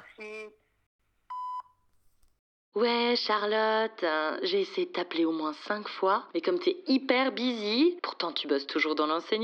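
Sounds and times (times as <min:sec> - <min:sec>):
speech: 0:00.2 - 0:00.6, 0:02.8 - 0:09.4
electronic voicemail beep before leaving a message: 0:01.3 - 0:01.7.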